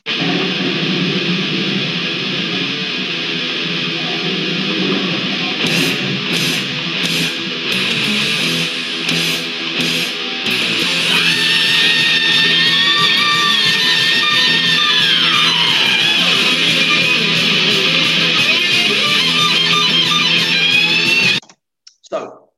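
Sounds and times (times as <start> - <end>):
distorted guitars in a heavy metal song: 0.0 - 22.1
long piercing high-pitched vocal scream: 10.5 - 19.3.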